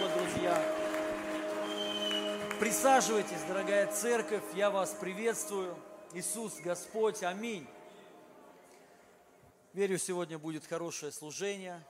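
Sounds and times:
church audience clapping for worship singers: 0.0s - 6.4s
speech: 2.6s - 7.8s, 9.8s - 11.8s.

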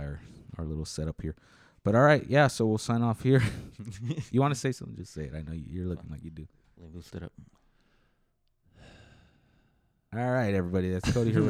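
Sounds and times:
speech: 0.6s - 7.6s, 10.1s - 11.4s
heavy breathing into the microphone: 1.4s - 1.8s, 7.4s - 10.0s.

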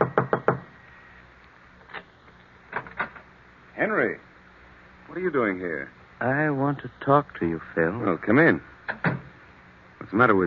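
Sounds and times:
knocking on a door: 0.0s - 0.6s
speech: 3.8s - 4.3s, 5.2s - 9.0s, 10.1s - 10.4s.

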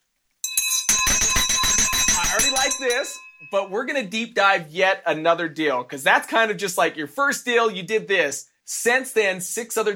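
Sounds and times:
handheld victory bell rung to celebrate a deal: 0.4s - 3.7s
speech: 2.8s - 9.9s.

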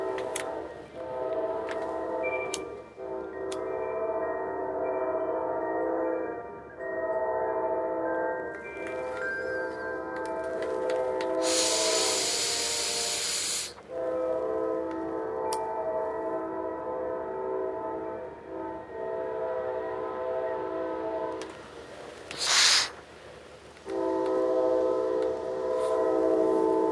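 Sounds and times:
train horn long sustained blasts: 0.0s - 6.2s, 7.0s - 8.1s, 10.3s - 21.6s, 23.9s - 26.8s
train rumbling past from the opposite direction: 0.0s - 26.8s
loud hissing bursts: 11.4s - 13.8s, 22.3s - 23.0s.

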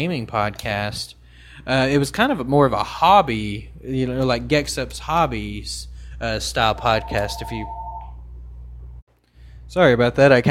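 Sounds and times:
speech: 0.0s - 7.8s, 9.7s - 10.5s
steady low hum: 5.8s - 9.0s
brief electronic phone tone chirping: 6.8s - 8.2s.

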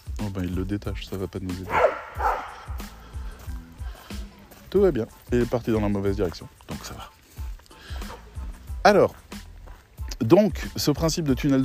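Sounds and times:
speech: 0.2s - 2.3s, 4.7s - 7.1s, 8.8s - 9.2s, 10.2s - 11.6s
dog barking in short sharp bursts: 1.7s - 3.0s.

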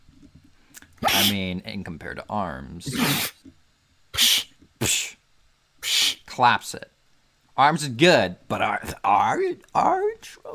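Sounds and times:
loud sharp sneezes: 1.0s - 1.4s, 2.9s - 3.4s, 4.2s - 5.2s
speech: 1.2s - 3.6s, 6.4s - 6.9s, 7.6s - 10.5s.

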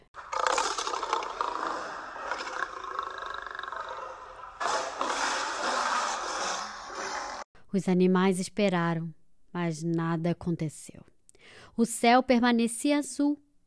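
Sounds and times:
lion roaring: 0.2s - 7.4s
speech: 7.7s - 13.4s.

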